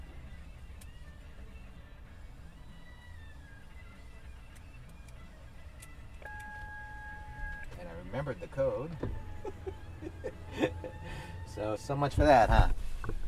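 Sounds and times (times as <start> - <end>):
big truck engine rumbling while maneuvering up to gate: 0.0 - 13.2
sustained electronic beep: 6.2 - 7.7
speech: 8.1 - 12.8
laughter: 9.3 - 11.3.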